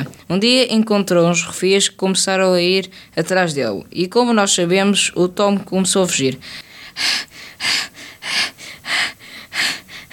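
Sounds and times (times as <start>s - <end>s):
speech: 0.0s - 9.7s
heavy panting breaths of a boy running away: 6.4s - 10.1s.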